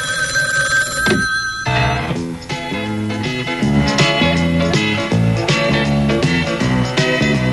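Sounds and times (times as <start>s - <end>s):
telephone bell ringing: 0.0s - 2.2s
busy musical passage with steady repeating notes: 1.7s - 7.5s.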